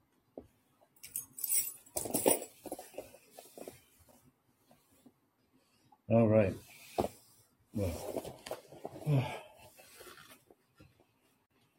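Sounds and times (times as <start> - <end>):
ring of keys jangling: 1.0 - 2.6
speech: 6.1 - 6.6, 7.8 - 8.1.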